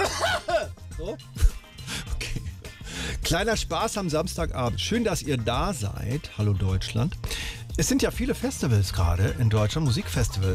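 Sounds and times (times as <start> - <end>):
person coughing into a microphone on air: 0.0 - 1.6
speech: 1.0 - 1.4, 3.3 - 10.5.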